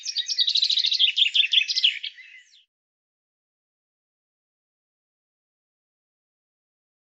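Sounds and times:
Common chaffinch song: 0:00.0 - 0:02.7.

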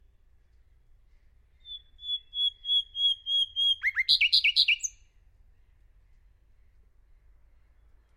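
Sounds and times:
bird song with pure steady whistled notes and sweeping chirps: 0:00.5 - 0:05.1.

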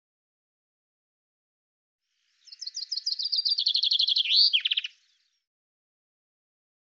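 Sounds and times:
common chaffinch song: 0:02.1 - 0:05.5.

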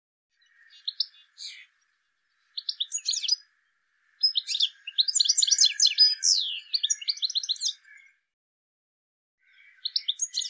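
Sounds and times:
bird chirping: 0:00.4 - 0:08.2, 0:09.4 - 0:10.4.

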